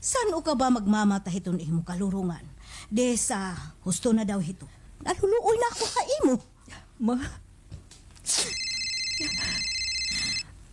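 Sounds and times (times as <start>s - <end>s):
speech: 0.0s - 7.4s, 8.3s - 8.6s
cellphone ringing with a steady electronic tone: 8.5s - 10.6s.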